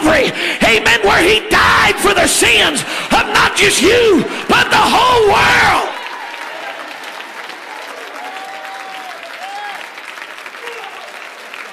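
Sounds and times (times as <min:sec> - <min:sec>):
speech: 0:01.1 - 0:05.9
congregation clapping: 0:05.7 - 0:11.7
whoops and cheers from a congregation: 0:05.8 - 0:10.0, 0:10.6 - 0:11.3.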